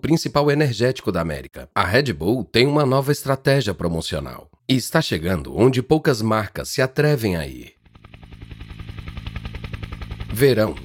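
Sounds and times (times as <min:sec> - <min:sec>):
speech: 0:00.0 - 0:07.8, 0:10.3 - 0:10.8
helicopter flying overhead with rotor blades chopping: 0:07.7 - 0:10.8.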